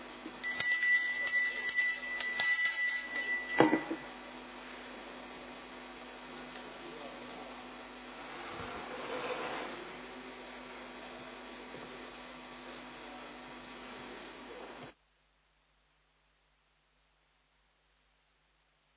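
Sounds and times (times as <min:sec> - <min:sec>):
low constant hum: 0:00.0 - 0:18.9
council chamber electric bell ringing: 0:00.4 - 0:04.1.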